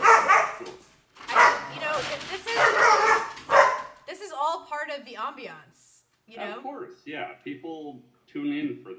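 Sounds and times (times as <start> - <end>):
dog barking: 0.0 - 1.8, 2.5 - 4.0
speech: 5.2 - 8.9.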